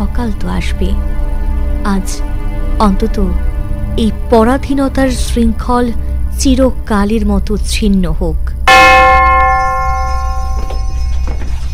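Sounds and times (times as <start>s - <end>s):
speech: 0.2s - 8.6s
division bell ringing in a parliament: 8.7s - 11.2s.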